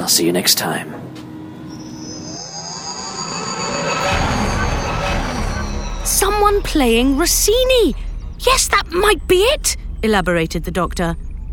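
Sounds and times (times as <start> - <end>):
speech: 0.1 - 1.2, 6.2 - 11.2
moving train rumbling heard from inside: 1.0 - 11.5
faint high-pitched whine from train wheels on the rails: 1.2 - 11.5.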